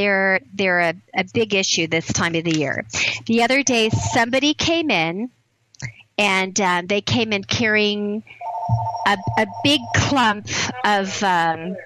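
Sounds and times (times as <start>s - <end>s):
speech: 0.0s - 11.8s
telephone ringing: 8.4s - 10.3s.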